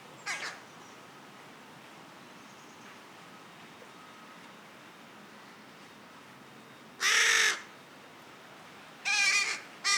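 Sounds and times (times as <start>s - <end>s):
Carrion crow (Corvus corone) uttering harsh nasal caws: 7.0s - 7.7s, 9.1s - 9.9s.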